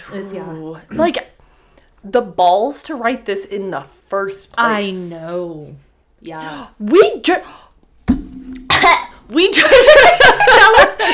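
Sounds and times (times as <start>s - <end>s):
speech: 0.0s - 1.3s, 2.0s - 7.6s, 9.3s - 11.1s
harsh hacking coughing fit: 8.7s - 9.1s
laughter: 9.6s - 11.1s.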